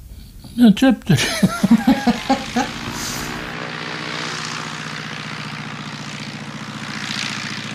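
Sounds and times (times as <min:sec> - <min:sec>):
speech: 0:00.6 - 0:01.6
laughter: 0:01.1 - 0:03.4
small two-seat propeller airplane engine droning: 0:01.2 - 0:07.7.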